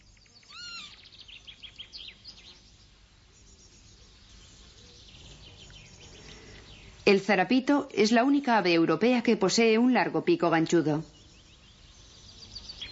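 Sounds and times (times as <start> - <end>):
faint chirps in a coastal meadow: 0.0 - 7.1, 11.0 - 12.8
steady breezy outdoor hiss in a coastal meadow: 0.0 - 12.8
Eurasian lapwing giving slurred whistling calls in a coastal meadow: 0.4 - 1.1
speech: 7.1 - 11.1.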